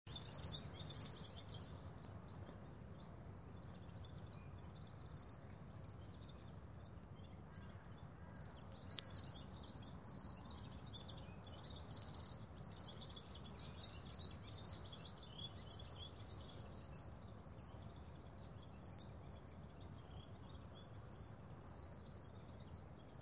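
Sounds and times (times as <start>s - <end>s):
Red-fronted serin tinkling twitter in Ladakh: 0.0s - 23.2s.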